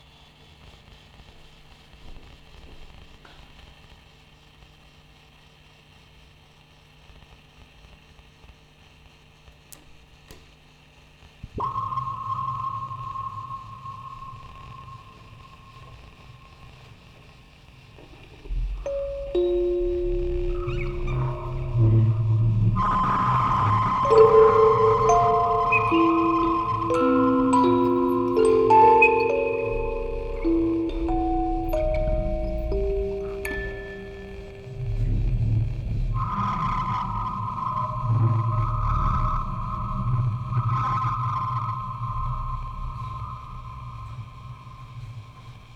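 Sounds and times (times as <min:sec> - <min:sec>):
field recording ambience: 0:11.4 - 0:45.7
tape recorder sound: 0:11.5 - 0:17.3, 0:18.0 - 0:38.6
quartet of music boxes playing: 0:18.5 - 0:35.8.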